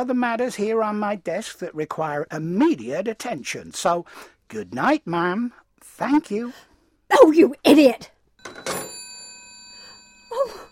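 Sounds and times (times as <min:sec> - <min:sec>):
speech: 0:00.0 - 0:08.8
telephone receiver set down onto its cradle: 0:08.4 - 0:09.0.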